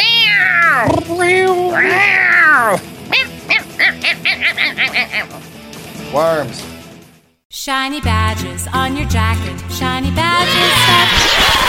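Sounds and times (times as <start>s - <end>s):
person imitating cat meows: 0.0s - 4.0s
person imitating cat yowls: 0.0s - 5.3s
speech: 6.1s - 6.6s, 7.6s - 11.6s.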